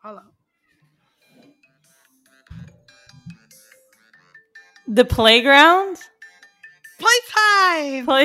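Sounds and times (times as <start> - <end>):
speech: 0.0 - 0.3, 4.9 - 6.1, 7.7 - 8.2
mobile phone ringtone electronic melody: 1.6 - 8.2
low thumping beats: 2.4 - 3.8.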